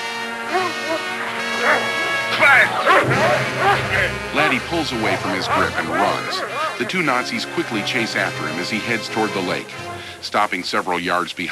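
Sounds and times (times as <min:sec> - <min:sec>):
steady low tonal background: 0:00.0 - 0:11.5
dog barking and yipping excitedly: 0:00.5 - 0:04.0
laughter: 0:00.5 - 0:10.9
speech: 0:03.0 - 0:11.5.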